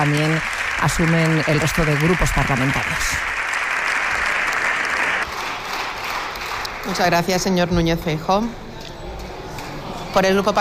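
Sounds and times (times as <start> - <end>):
speech: 0.0 - 3.4, 6.9 - 8.6, 10.1 - 10.5
parliamentary bench giving standing applause: 0.0 - 7.3.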